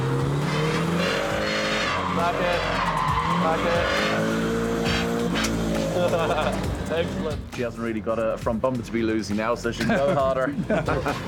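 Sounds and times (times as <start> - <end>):
car tires squealing and skidding through a drift: 0.0 - 7.4
drifting car engine roaring at high revs: 0.0 - 7.6
speech: 2.2 - 4.4, 6.0 - 11.2
laughter: 5.7 - 7.2, 9.6 - 11.2.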